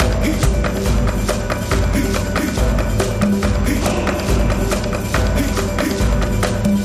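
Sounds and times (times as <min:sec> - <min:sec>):
music loop: 0:00.0 - 0:06.8.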